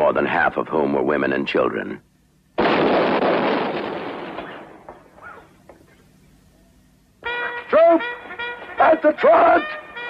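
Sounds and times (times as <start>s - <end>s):
speech: 0.1s - 2.1s, 9.0s - 9.8s
gunfire and artillery from a film's cavalry attack: 2.6s - 5.0s.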